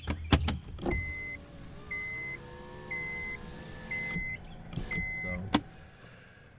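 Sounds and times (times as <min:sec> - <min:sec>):
car power window humming and whining upward: 0:00.8 - 0:05.8.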